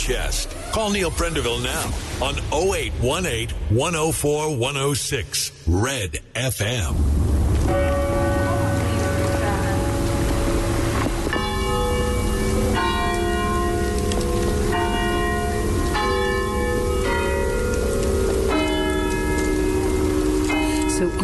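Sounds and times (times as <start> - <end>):
speech: 0.0 - 8.0
church bells rung by pulling ropes: 7.6 - 21.2.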